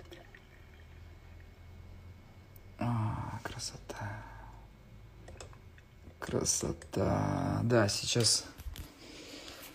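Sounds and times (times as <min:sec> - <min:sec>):
freshly brewed tea pouring into a mug: 0:00.0 - 0:01.6
speech: 0:03.6 - 0:04.3, 0:06.3 - 0:08.6.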